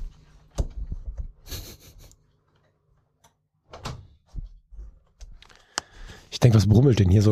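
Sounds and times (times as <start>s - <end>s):
door being closed: 3.7s - 4.4s
speech: 6.4s - 7.2s.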